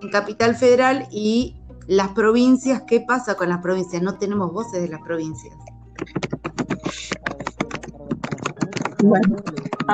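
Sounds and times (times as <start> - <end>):
speech: 0.0 - 5.8, 9.0 - 9.9
faint murmur: 6.0 - 9.9
typing on a computer keyboard: 6.0 - 9.9.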